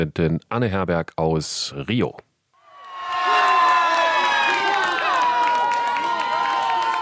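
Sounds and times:
speech: 0.0s - 2.3s
crowd in Urca, Rio de Janeiro cheering and screaming over a World Cup goal: 2.6s - 6.9s.

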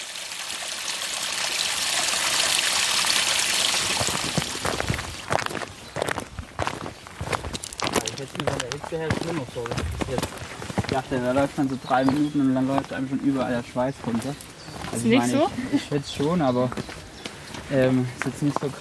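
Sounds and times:
rivulet water trickling and splashing: 0.0s - 18.7s
mountain stream rushing: 1.0s - 12.4s
footsteps: 3.8s - 18.7s
speech: 9.0s - 17.0s, 17.7s - 18.7s.

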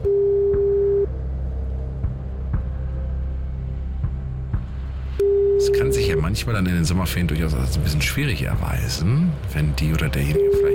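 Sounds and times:
phone ringback tone: 0.0s - 1.1s, 5.2s - 6.2s, 10.3s - 10.7s
low rumbling background: 0.0s - 10.7s
speech: 6.2s - 10.7s.

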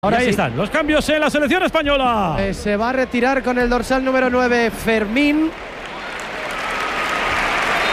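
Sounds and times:
speech: 0.0s - 5.8s
stadium crowd ovation and applause at a football match: 5.0s - 7.9s.

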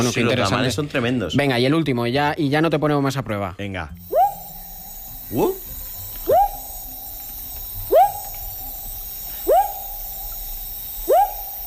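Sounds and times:
speech: 0.0s - 4.1s, 5.3s - 5.6s
frog calling with rising whoop-like notes: 4.0s - 10.4s, 11.0s - 11.6s.

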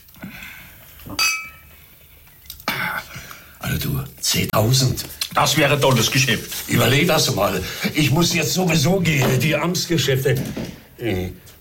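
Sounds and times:
faint room noise: 0.0s - 11.6s
glass clinks: 1.2s - 1.7s
speech: 3.8s - 11.5s.

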